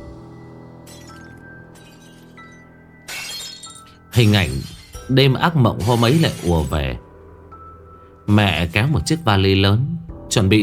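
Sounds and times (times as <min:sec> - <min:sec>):
glass cups and saucers shattering: 0:00.9 - 0:05.2
speech: 0:04.2 - 0:07.1, 0:08.3 - 0:10.6.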